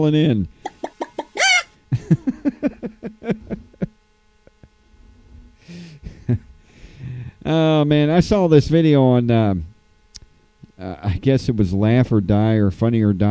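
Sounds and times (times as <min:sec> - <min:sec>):
speech: 0:00.0 - 0:00.6, 0:01.9 - 0:03.4, 0:07.5 - 0:09.7, 0:10.8 - 0:13.2
chickens clucking: 0:00.6 - 0:01.7
laughter: 0:00.7 - 0:04.7.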